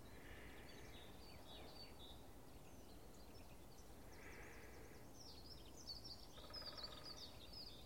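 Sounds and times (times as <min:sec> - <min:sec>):
soft hiss: 0:00.0 - 0:05.9
light melodic fast bird song: 0:00.0 - 0:07.8.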